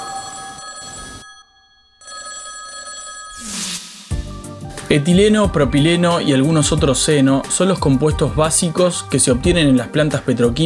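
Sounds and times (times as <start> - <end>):
old telephone mechanical bell ringing: 0.0 - 3.5
speech: 4.9 - 10.6.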